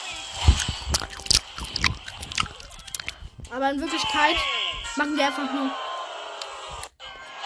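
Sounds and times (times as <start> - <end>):
loud wet gum chewing: 0.4 - 3.3
speech: 3.5 - 5.8.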